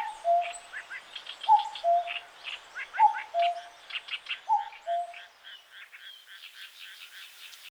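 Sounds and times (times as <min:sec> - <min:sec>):
common cuckoo two-note descending call: 0:00.0 - 0:00.9, 0:01.5 - 0:02.3, 0:02.9 - 0:03.8, 0:04.4 - 0:07.7
assorted songbirds chattering: 0:00.0 - 0:07.7.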